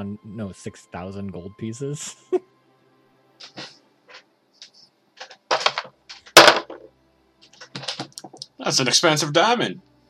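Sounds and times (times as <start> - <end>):
speech: 0.0 - 2.5, 3.4 - 3.7, 8.7 - 9.9
dice clattering across a hard surface: 5.2 - 6.9, 7.6 - 8.4.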